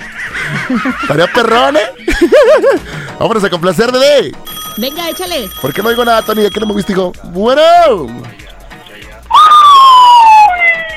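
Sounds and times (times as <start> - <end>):
laughter: 0.0 - 3.0
speech: 0.7 - 8.4
police car siren wailing: 9.3 - 10.9.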